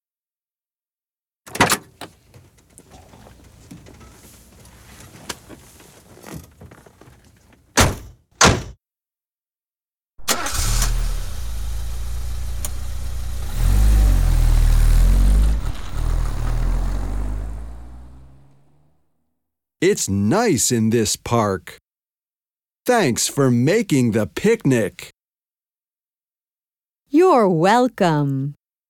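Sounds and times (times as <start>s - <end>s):
car doors thudding shut as people get into the car: 10.2s - 18.6s
speech: 19.8s - 21.8s, 22.9s - 25.2s, 27.1s - 28.6s.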